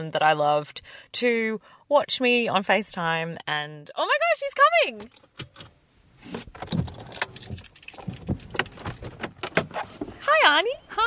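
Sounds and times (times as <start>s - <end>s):
speech: 0.0s - 6.8s, 10.3s - 11.0s
car door opening: 5.3s - 10.2s
keys jangling: 7.1s - 9.1s.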